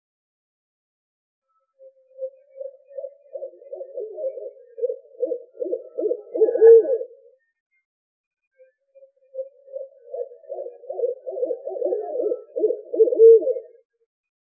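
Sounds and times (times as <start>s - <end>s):
owl hooting: 2.2s - 7.2s, 9.3s - 13.8s.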